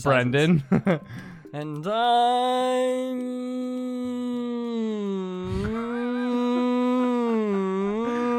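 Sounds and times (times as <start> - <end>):
speech: 0.0 - 6.4
person imitating a wolf howl: 2.9 - 8.3.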